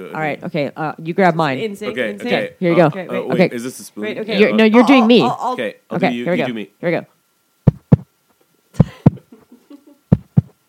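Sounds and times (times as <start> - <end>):
speech: 0.0 - 7.2
rhythmic low thumping in lub-dub pattern: 7.6 - 8.1, 10.1 - 10.6.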